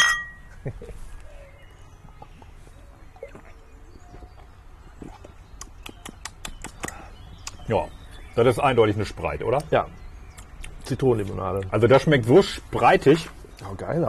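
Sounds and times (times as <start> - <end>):
glass bottles clinking together in a toast: 0.0 - 0.5
speech: 0.6 - 1.1, 7.7 - 10.0, 10.9 - 14.0.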